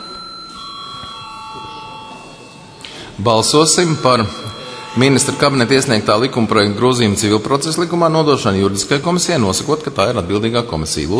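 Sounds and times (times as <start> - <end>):
parliament chamber electric bell ringing before a vote: 0.0 - 8.4
speech: 3.2 - 11.1.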